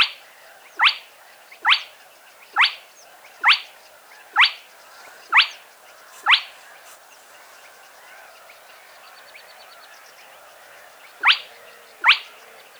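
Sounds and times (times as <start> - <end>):
spotted crake whiplike rising calls played back: 0.8 - 7.0, 11.0 - 12.7.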